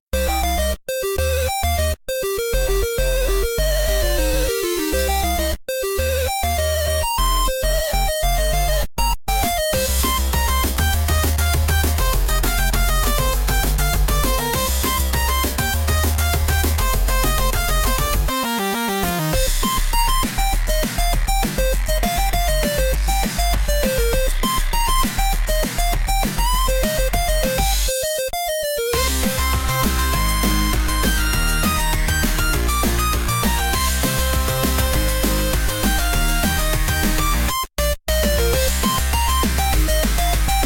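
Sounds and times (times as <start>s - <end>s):
background music: 0.2s - 40.6s.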